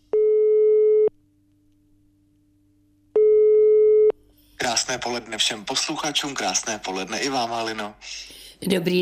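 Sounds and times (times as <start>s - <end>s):
telephone ringback tone during outgoing call: 0.1s - 1.1s, 3.2s - 4.1s
speech: 4.7s - 9.0s.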